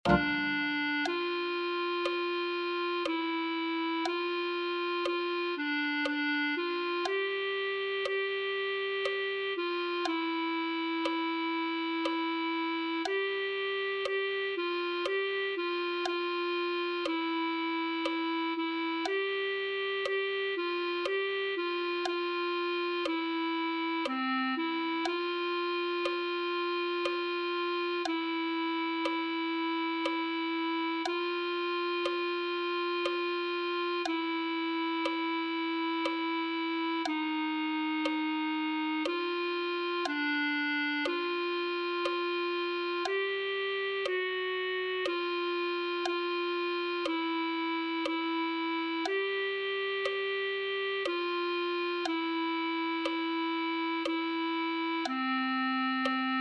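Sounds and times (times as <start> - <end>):
clarinet: 0.0 - 56.3.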